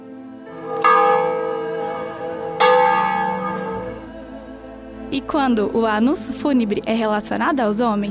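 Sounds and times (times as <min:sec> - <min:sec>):
church bell tolling: 0:00.5 - 0:04.2
speech: 0:05.1 - 0:08.0.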